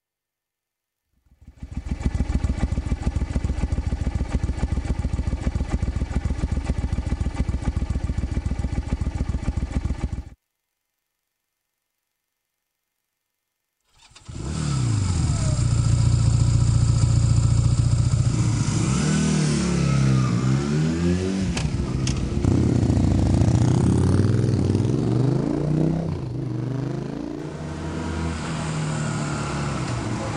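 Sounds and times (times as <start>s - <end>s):
motorcycles: 1.4s - 10.4s, 14.0s - 30.3s.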